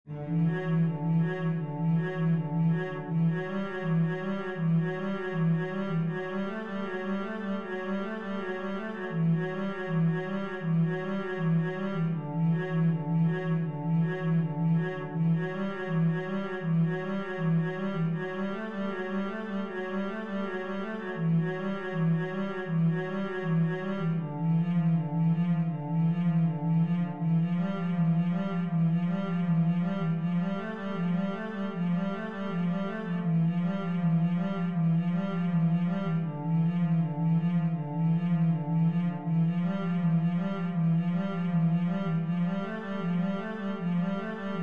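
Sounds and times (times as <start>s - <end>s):
cello etude: 0.0s - 44.6s.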